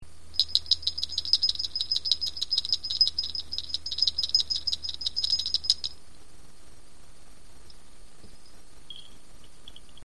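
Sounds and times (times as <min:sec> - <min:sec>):
medium antique strap bells jingling: 0:00.4 - 0:06.0.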